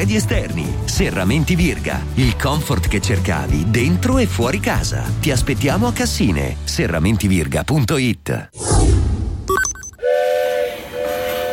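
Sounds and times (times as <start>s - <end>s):
speech: 0.0s - 8.8s
train passing with a rumble: 10.0s - 11.5s
train steam whistle blasts: 10.0s - 11.5s.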